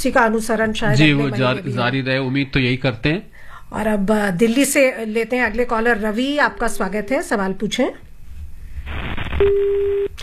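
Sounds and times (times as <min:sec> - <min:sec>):
speech: 0:00.0 - 0:08.0, 0:09.4 - 0:10.2
telephone line tone after a dropped call: 0:09.3 - 0:10.1.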